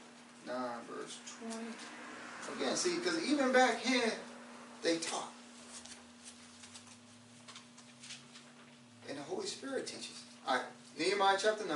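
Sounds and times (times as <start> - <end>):
speech: 0.4 - 5.4, 9.6 - 11.7
Bible pages turning: 5.6 - 8.6.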